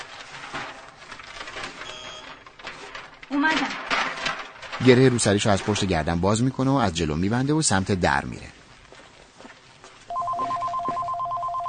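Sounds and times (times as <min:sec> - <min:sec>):
faint noise: 0:00.0 - 0:11.6
speech: 0:03.3 - 0:04.0, 0:04.8 - 0:08.6
telephone ringing with warbling electronic trill: 0:10.1 - 0:11.6.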